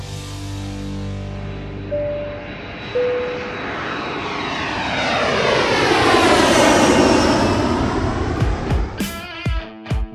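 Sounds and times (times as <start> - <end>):
airplane engine roaring overhead: 0.0 - 9.9
brief tonal beeps: 1.9 - 4.7.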